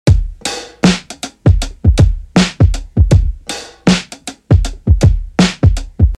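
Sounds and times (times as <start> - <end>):
drum loop slowed to tape: 0.1 - 6.1.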